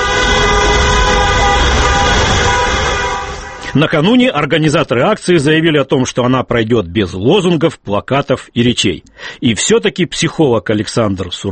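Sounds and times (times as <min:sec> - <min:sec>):
rumble of moving vehicles: 0:00.0 - 0:03.7
car horns honking from passing traffic: 0:00.0 - 0:04.2
speech: 0:03.8 - 0:11.4.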